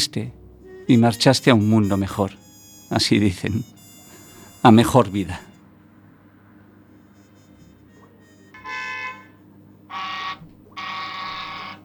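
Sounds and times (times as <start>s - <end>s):
speech: 0.0s - 3.8s, 4.6s - 5.5s
low steady rumble: 0.0s - 8.6s
car horn honking: 0.7s - 6.0s, 6.9s - 11.8s.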